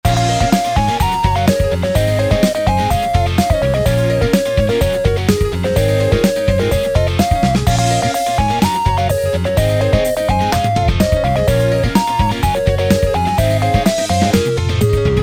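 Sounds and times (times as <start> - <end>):
drums: 0.0 - 15.2.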